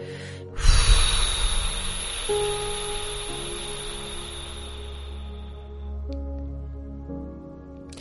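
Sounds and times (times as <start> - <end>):
long breathy exhale after holding the breath in a guided meditation: 0.0 - 5.6
gentle sustained music: 0.0 - 7.9.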